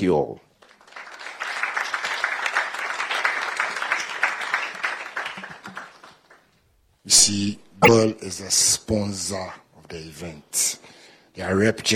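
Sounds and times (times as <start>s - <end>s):
speech: 0.0s - 0.5s, 7.1s - 11.9s
crowd applauding after a speech: 0.9s - 6.1s.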